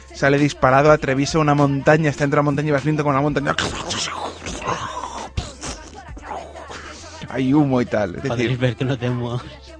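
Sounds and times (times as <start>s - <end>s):
speech: 0.2s - 4.9s, 7.4s - 9.6s
person making groaning and whooshing fight sound effects by mouth: 3.5s - 7.2s.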